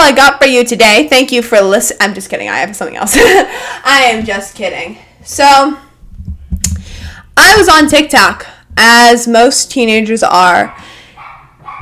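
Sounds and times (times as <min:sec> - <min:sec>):
speech: 0:00.1 - 0:05.8, 0:07.4 - 0:10.9
dog barking: 0:10.6 - 0:11.8.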